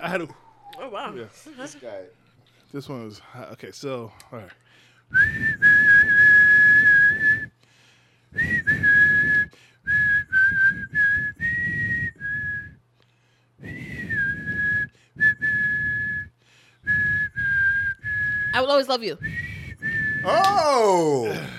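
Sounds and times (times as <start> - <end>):
speech: 0.0 - 5.8, 18.6 - 19.4, 20.2 - 21.5
person whistling a song melody: 5.1 - 7.5, 8.4 - 12.8, 13.6 - 16.3, 16.9 - 18.6, 19.2 - 20.5.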